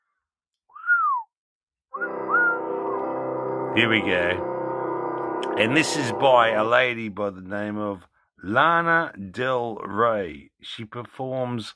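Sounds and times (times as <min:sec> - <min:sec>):
person whistling a tune: 0:00.7 - 0:01.3, 0:02.0 - 0:02.6
buzzy sustained backing tone: 0:02.0 - 0:07.1
speech: 0:03.8 - 0:04.5, 0:05.5 - 0:11.7.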